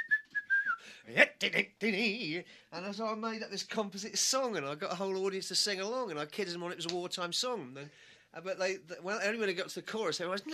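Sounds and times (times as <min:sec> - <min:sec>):
high-pitched whistle: 0:00.0 - 0:00.8
speech: 0:01.1 - 0:10.5.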